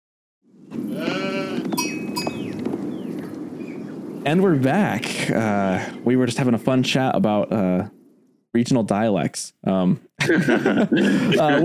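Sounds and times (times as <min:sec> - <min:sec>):
sheep bleating amid a flock: 0:00.9 - 0:01.8
faint bell clinks: 0:01.8 - 0:02.5
speech: 0:04.2 - 0:11.6
laughter: 0:10.2 - 0:11.6.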